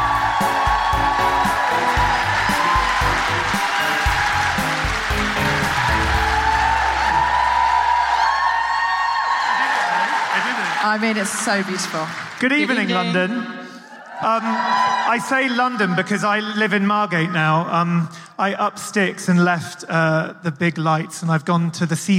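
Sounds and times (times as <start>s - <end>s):
high whoops from the audience: 0.0s - 4.9s, 5.6s - 10.8s, 13.8s - 16.1s
music playing: 0.0s - 8.8s
large audience in London cheering and applauding to welcome guests: 0.0s - 17.3s
speech: 10.9s - 13.6s, 14.2s - 22.1s.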